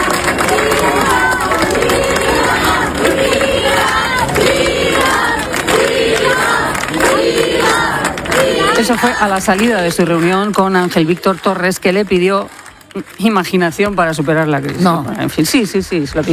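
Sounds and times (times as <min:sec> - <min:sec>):
large crowd in Ceuta cheering and shouting: 0:00.0 - 0:12.1
large crowd in Ceuta clapping: 0:00.0 - 0:16.3
speech: 0:08.9 - 0:16.3.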